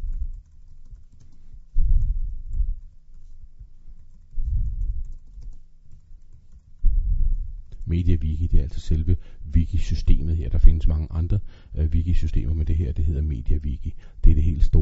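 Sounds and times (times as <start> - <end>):
typing on a computer keyboard: 0.0 - 6.8
speech: 7.9 - 14.8.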